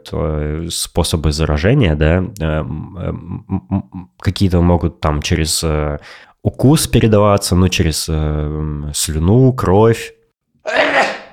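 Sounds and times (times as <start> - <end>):
speech: 0.0 - 11.1
person sneezing: 10.6 - 11.3.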